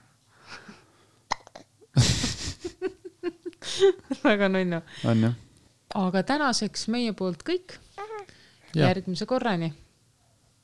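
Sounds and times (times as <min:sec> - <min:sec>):
hiccups: 0:01.3 - 0:01.7
laughter-like noise: 0:02.0 - 0:04.3
speech: 0:03.8 - 0:05.4, 0:06.0 - 0:07.8, 0:08.7 - 0:09.8.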